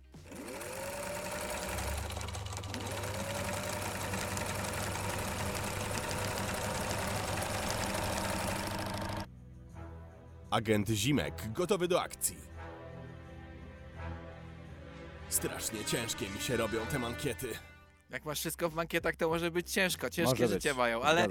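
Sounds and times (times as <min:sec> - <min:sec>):
sewing machine stitching a cuff: 0:00.0 - 0:09.3
speech: 0:10.5 - 0:12.5, 0:15.4 - 0:21.3.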